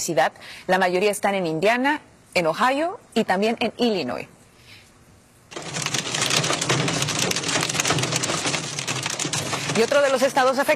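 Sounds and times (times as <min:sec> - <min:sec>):
speech: 0:00.0 - 0:04.3, 0:09.8 - 0:10.7
storm hail bouncing off a vehicle in North Carolina: 0:05.5 - 0:10.7.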